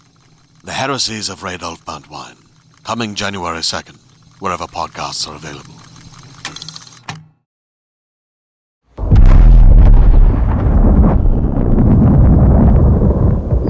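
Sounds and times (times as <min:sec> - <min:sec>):
speech: 0:00.6 - 0:05.8
sonic boom with heavy blast and rumble: 0:09.0 - 0:13.6.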